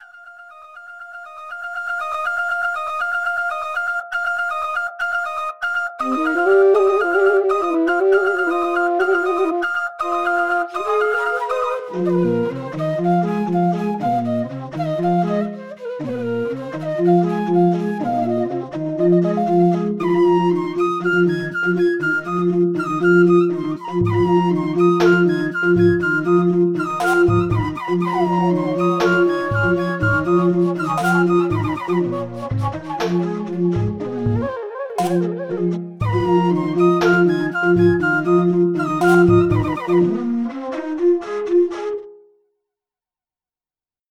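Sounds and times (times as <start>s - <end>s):
bansuri bamboo flute: 0.0s - 42.2s.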